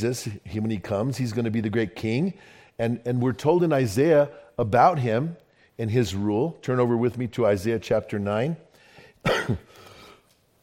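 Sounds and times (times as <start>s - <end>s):
speech: 0.0s - 8.6s, 9.5s - 9.8s
single forceful cough in two quick bursts: 9.2s - 9.9s.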